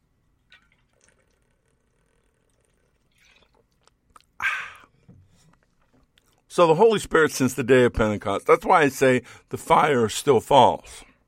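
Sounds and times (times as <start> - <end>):
person sipping water: 0.5 - 6.5
gulp: 2.6 - 6.5
speech: 6.6 - 11.1.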